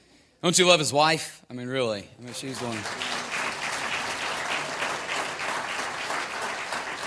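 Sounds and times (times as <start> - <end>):
speech: 0.4 - 3.1
church audience clapping: 2.2 - 7.0.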